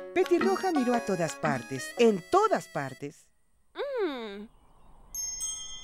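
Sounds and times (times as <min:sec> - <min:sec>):
speech: 0:00.2 - 0:03.3
small bells jingling: 0:05.2 - 0:05.8.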